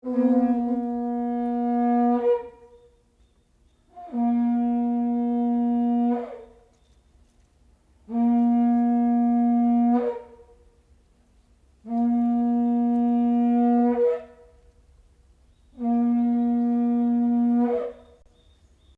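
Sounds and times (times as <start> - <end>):
Japanese shell trumpet blowing: 0.0 - 2.8, 4.0 - 6.6, 8.1 - 10.5, 11.8 - 14.5, 15.8 - 18.2.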